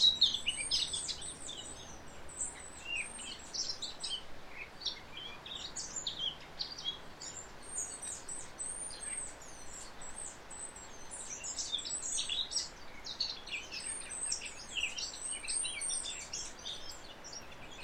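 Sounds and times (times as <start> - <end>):
Eurasian blackcap Sylvia atricapilla singing: 0.0 - 17.8.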